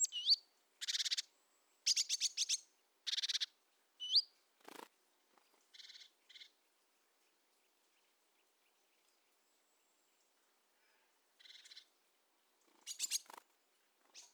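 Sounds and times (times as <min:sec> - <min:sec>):
great tit Parus major calls: 0:00.0 - 0:04.8, 0:05.7 - 0:06.5, 0:11.4 - 0:11.9, 0:12.7 - 0:13.4, 0:14.1 - 0:14.3.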